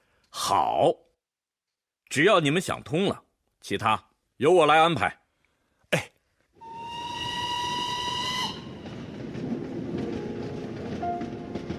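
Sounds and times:
speech: 0:00.5 - 0:01.1, 0:02.1 - 0:05.2, 0:05.9 - 0:06.1
steam train whistle on a train bound for Yan'an: 0:06.6 - 0:08.8
moving steam train rumble: 0:07.0 - 0:11.7.

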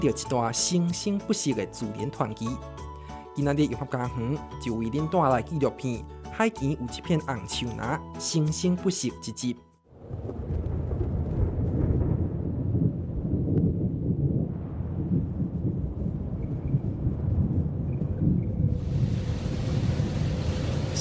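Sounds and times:
speech: 0:00.0 - 0:02.8, 0:03.4 - 0:10.4
strong wind over a subtropical sea: 0:10.0 - 0:21.0
huge waves on a subtropical sea: 0:18.8 - 0:21.0.

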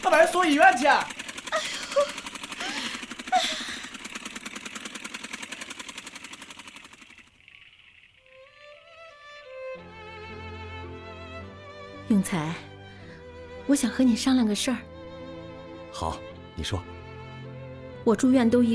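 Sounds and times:
speech: 0:00.0 - 0:02.2, 0:12.1 - 0:12.7, 0:13.7 - 0:14.9, 0:16.0 - 0:16.9, 0:18.0 - 0:18.7
tractor engine idling: 0:00.0 - 0:08.6.

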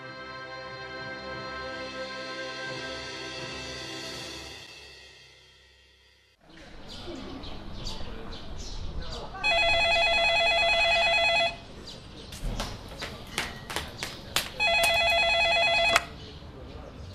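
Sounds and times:
telephone ringing in bright electronic bursts: 0:09.4 - 0:11.6, 0:14.6 - 0:16.1.

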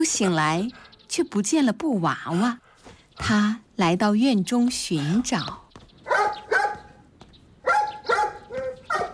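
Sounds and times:
speech: 0:00.1 - 0:02.6, 0:03.2 - 0:05.6
puppy barking at a rag doll: 0:06.0 - 0:06.9, 0:07.6 - 0:09.1.

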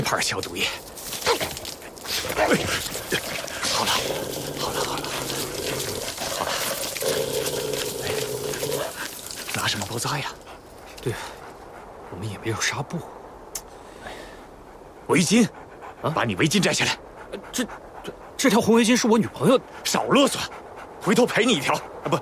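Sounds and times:
injured three-legged wolf panting and yelping: 0:00.1 - 0:12.3, 0:14.5 - 0:18.9, 0:19.6 - 0:22.1
injured three-legged wolf whimpering while its wound is treated: 0:01.2 - 0:09.5.

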